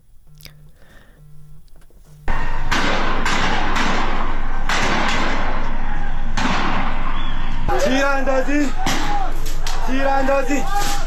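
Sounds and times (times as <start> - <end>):
dense outdoor crowd din at a street protest: 2.3 - 11.0
gunshots fired at a street protest: 2.3 - 11.0
people shouting and yelling: 2.3 - 11.0.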